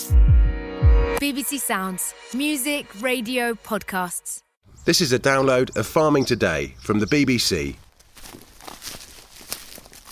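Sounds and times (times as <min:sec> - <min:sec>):
speech: 0:01.2 - 0:07.8
footsteps crushing crispy frozen leaves on a snowy farm in Oxfordshire: 0:07.7 - 0:10.1.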